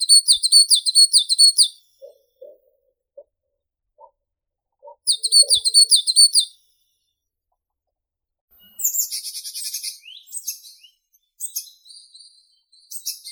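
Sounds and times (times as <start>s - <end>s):
eastern tit Parus minor calling: 0.1s - 3.4s, 4.0s - 6.4s.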